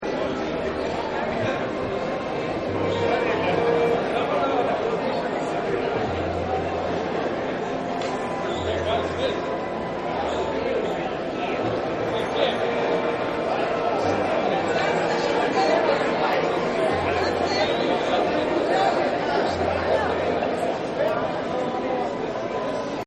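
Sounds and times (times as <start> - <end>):
big crowd noise: 0.0 - 23.0
music: 0.0 - 23.0.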